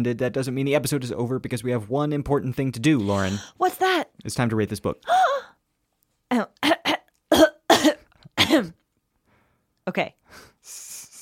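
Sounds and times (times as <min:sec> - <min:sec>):
speech: 0:00.0 - 0:05.6, 0:06.3 - 0:06.5, 0:08.5 - 0:08.8, 0:09.9 - 0:10.8
person coughing into the microphone: 0:06.6 - 0:08.8.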